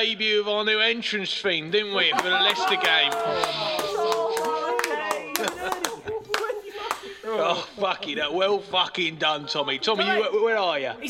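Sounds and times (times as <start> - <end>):
speech: 0.0 - 4.6, 7.3 - 11.0
voices calling out and cheering: 1.9 - 7.6
laughter: 1.9 - 10.6
group of people clapping: 2.0 - 7.2.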